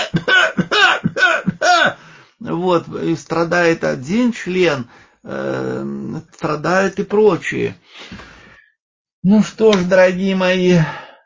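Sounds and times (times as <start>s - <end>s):
raspy coughs from one person: 0.0s - 2.0s
speech: 2.6s - 8.3s, 9.2s - 11.0s.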